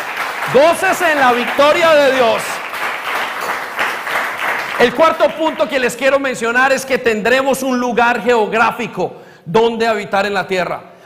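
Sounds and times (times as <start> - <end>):
audience applauding with many hands clapping: 0.0 - 5.9
speech: 0.5 - 2.5, 4.8 - 10.9.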